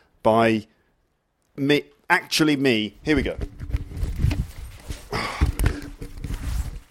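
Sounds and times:
speech: 0.2 - 0.8, 1.6 - 3.6
coat fabric rustling and swishing as it is taken off: 3.2 - 6.9
soft thumps and shuffles of a coat being pulled free: 3.2 - 6.9.

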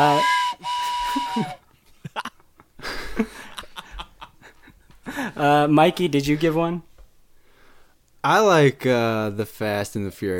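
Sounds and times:
speech: 0.0 - 0.7, 1.4 - 1.6, 5.6 - 6.9, 8.2 - 10.3
loud hissing train whistle blowing: 0.0 - 1.6.

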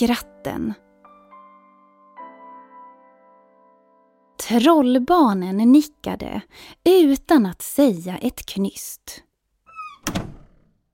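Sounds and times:
speech: 0.0 - 0.9, 4.4 - 9.2
door hinge squeaking: 9.7 - 10.7.

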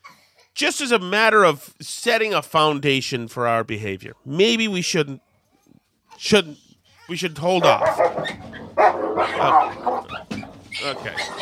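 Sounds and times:
speech: 0.6 - 5.3, 6.2 - 8.5, 9.2 - 10.2, 10.8 - 11.3
several dogs barking and snarling in a fight: 7.6 - 11.3.

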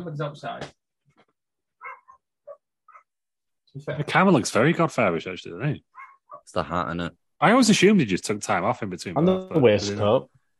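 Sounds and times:
speech: 0.0 - 0.8, 3.7 - 10.4
dog barking: 1.8 - 3.2, 5.9 - 6.5.

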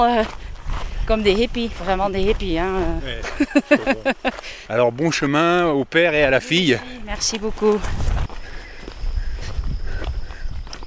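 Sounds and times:
speech: 0.0 - 0.5, 1.1 - 8.2
low wind-like rumble: 0.0 - 3.2, 7.8 - 10.7
footsteps crunching along a balcony-like path outdoors: 0.0 - 10.8
laughter: 3.0 - 4.5.

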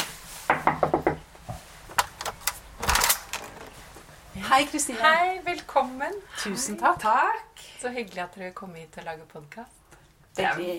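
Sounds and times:
knocking on a wooden front door: 0.5 - 1.2
speech: 4.5 - 9.8, 10.4 - 10.7.

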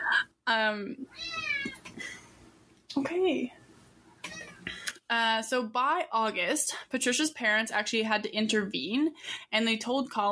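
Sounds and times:
speech: 0.5 - 1.4, 3.0 - 3.6, 5.1 - 10.3
cat meowing: 1.1 - 1.8, 4.3 - 4.7.

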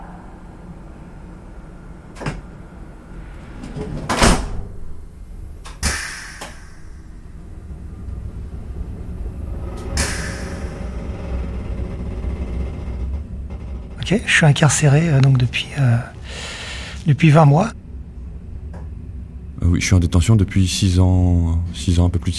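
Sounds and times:
steady low rumble: 0.0 - 22.3
train doors sliding shut automatically before departure: 1.8 - 17.7
pneumatic hiss of train doors: 5.8 - 7.1, 9.8 - 11.5
speech: 14.1 - 17.8, 19.7 - 22.3.

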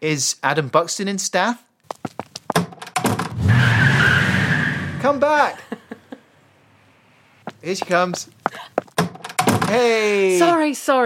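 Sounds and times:
speech: 0.0 - 2.2, 7.6 - 8.9, 9.7 - 11.0
voice imitating a car screeching away: 3.3 - 5.3.

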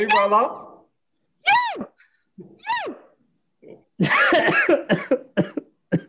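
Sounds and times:
speech: 0.0 - 0.6, 4.0 - 6.0
person coughing with hacking and wheezy coughs: 4.0 - 6.0.

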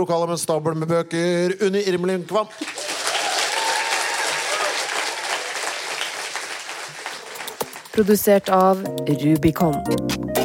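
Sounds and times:
speech: 0.0 - 3.0, 8.0 - 10.3
audience applause: 2.6 - 8.0.

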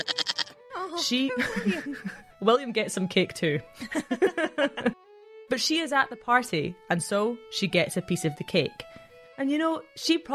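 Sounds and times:
goat bleating: 0.0 - 0.6
speech: 0.9 - 4.9, 5.5 - 10.3
laughter: 1.3 - 2.2, 3.8 - 5.0.

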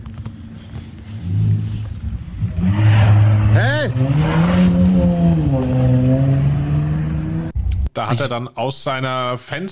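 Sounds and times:
parked car engine revving in front of the house: 1.2 - 7.8
speech: 8.0 - 9.7.

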